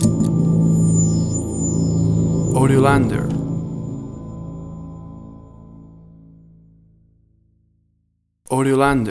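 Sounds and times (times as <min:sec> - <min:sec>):
dark piano theme stinger: 0:00.0 - 0:07.2.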